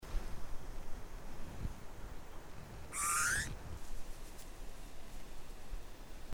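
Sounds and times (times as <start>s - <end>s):
steady low background noise: 0.0s - 6.3s
Eurasian bullfinch Pyrrhula pyrrhula soft upward-sliding piping note: 3.0s - 3.5s.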